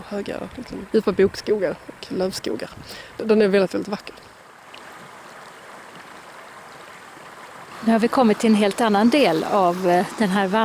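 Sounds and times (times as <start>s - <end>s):
stream tumbling over small falls: 0.0s - 10.6s
speech: 0.1s - 4.3s, 7.8s - 10.6s.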